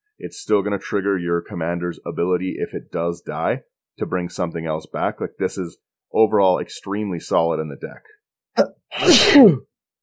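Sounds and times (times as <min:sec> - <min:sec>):
speech: 0:00.2 - 0:09.7
sneeze: 0:08.6 - 0:09.7.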